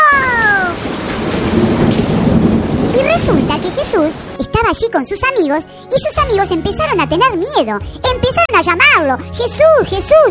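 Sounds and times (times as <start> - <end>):
heavy rain in a thunderstorm: 0.0 - 5.1
thunder rumbling in a strong storm: 0.0 - 5.4
speech: 3.9 - 10.2.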